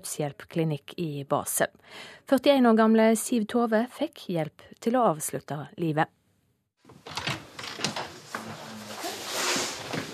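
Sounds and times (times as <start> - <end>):
speech: 0.0 - 6.2
door opening with clattering and rattling: 6.9 - 8.7.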